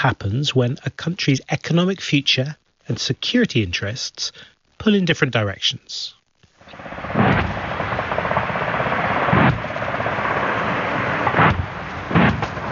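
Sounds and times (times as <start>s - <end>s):
speech: 0.0s - 7.2s
heavy booms from a military live-fire exercise near Townsville, Queensland, Australia: 6.7s - 12.6s.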